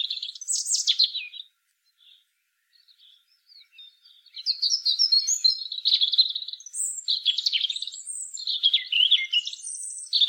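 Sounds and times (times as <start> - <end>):
European robin singing, Erithacus rubecula: 0.0 - 10.2.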